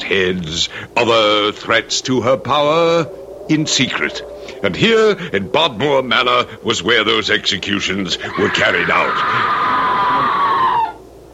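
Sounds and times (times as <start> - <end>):
speech: 0.1 - 9.6
person screaming in an old manor house: 8.2 - 11.0.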